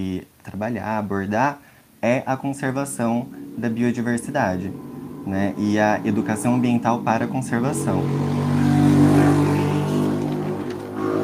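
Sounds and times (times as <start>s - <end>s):
speech: 0.0s - 8.6s
motorcycle engine revving loudly past: 2.4s - 11.2s.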